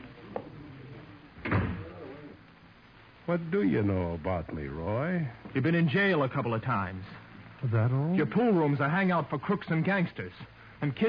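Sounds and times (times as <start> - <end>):
door swinging shut with a solid thud: 1.4 - 1.9
speech: 3.3 - 11.0.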